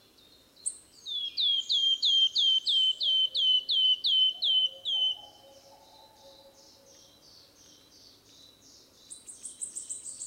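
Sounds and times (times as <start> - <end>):
wood warbler piping song, Phylloscopus sibilatrix: 1.1 - 5.4.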